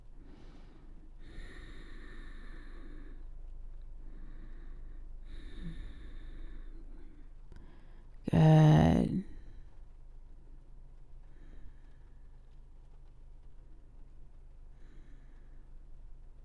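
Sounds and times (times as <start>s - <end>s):
slow deep breathing through the nose: 0.0s - 8.2s, 11.0s - 13.0s, 14.3s - 16.4s
low steady hum: 0.0s - 16.4s.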